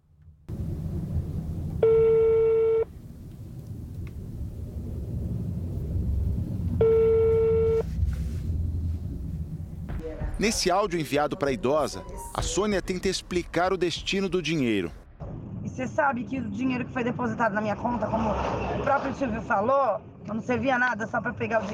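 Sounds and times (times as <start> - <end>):
low rumbling hum: 0.0 - 15.9
electronic ringback tones of a telephone call attempt: 1.8 - 2.9, 6.8 - 7.9
speech: 10.4 - 15.0, 15.8 - 21.7.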